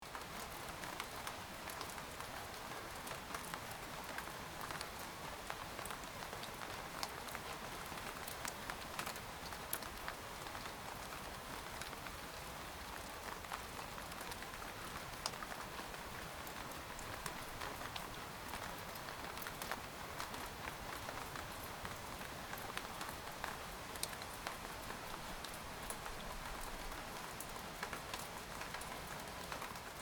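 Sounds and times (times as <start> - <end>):
cozy midnight rain: 0.0 - 30.0.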